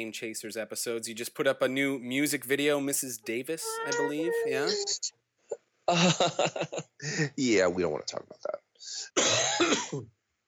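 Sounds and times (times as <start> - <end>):
speech: 0.0 - 10.2
laughter: 5.9 - 7.6
raspy cough with throat-clearing rasp: 9.1 - 10.0.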